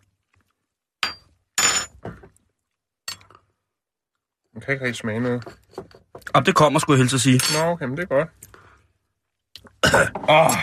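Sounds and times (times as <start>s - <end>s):
glasses clinking together in a toast: 1.0s - 2.0s, 3.1s - 3.4s, 7.3s - 7.8s
speech: 4.6s - 8.4s, 10.0s - 10.6s.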